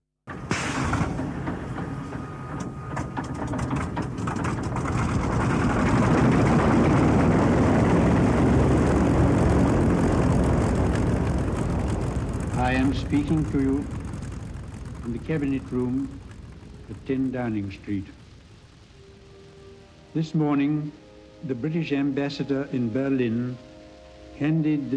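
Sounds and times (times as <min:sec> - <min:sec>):
Typhoon aircraft engine roaring: 0:00.3 - 0:20.1
speech: 0:13.1 - 0:14.0, 0:15.1 - 0:16.2, 0:16.9 - 0:18.2, 0:20.2 - 0:23.7, 0:24.4 - 0:24.9.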